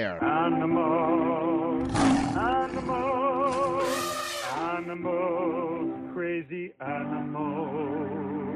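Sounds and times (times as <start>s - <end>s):
speech: 0.0s - 8.5s
tiger roar: 1.8s - 4.6s.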